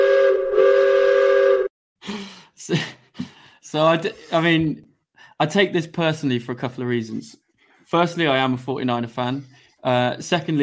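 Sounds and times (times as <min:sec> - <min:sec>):
train whistle: 0:00.0 - 0:01.7
speech: 0:02.7 - 0:03.0, 0:03.7 - 0:10.6.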